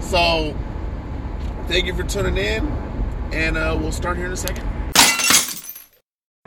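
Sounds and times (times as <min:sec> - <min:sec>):
speech: 0:00.1 - 0:00.7, 0:01.7 - 0:04.7
glass shattering: 0:04.9 - 0:06.0.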